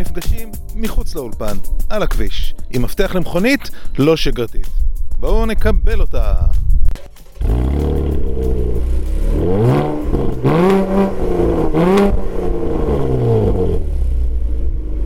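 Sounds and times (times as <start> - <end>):
speech: 0.2 - 6.6
Chevrolet Camaro engine idling and revving on a road: 7.2 - 15.0.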